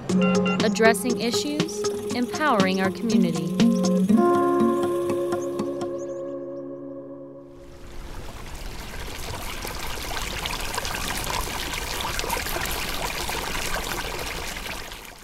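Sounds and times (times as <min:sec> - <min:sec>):
ringing tonal chord: 0:00.1 - 0:07.8
speech: 0:00.2 - 0:04.5
water pouring and trickling: 0:07.8 - 0:15.2.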